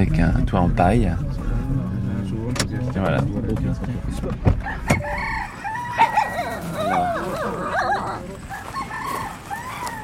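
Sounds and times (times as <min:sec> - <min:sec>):
speech: 0:00.0 - 0:01.8, 0:02.9 - 0:05.3
village farmyard poultry clucking: 0:02.8 - 0:10.0
farmyard guinea fowl calling: 0:04.6 - 0:10.0
farmyard poultry crowing: 0:04.6 - 0:10.0
village dogs barking: 0:04.7 - 0:10.0
village dogs whimpering: 0:05.0 - 0:08.9.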